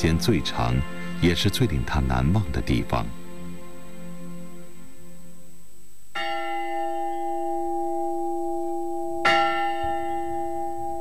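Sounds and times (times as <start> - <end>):
church bell tolling: 0.0 - 3.0, 6.1 - 10.9
speech: 0.0 - 3.2.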